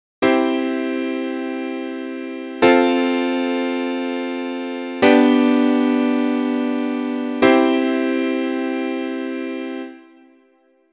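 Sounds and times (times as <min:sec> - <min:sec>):
chord change: 0:00.2 - 0:10.6.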